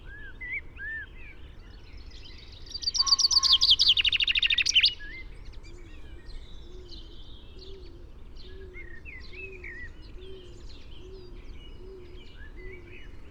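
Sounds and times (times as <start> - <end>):
Common chaffinch Fringilla coelebs song: 2.6 - 5.0.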